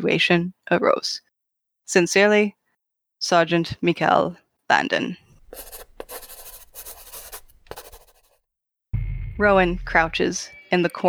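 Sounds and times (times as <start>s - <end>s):
speech: 0.0s - 1.3s, 1.9s - 2.6s, 3.2s - 6.3s, 9.4s - 11.0s
quill pen scratching on paper: 5.3s - 8.4s.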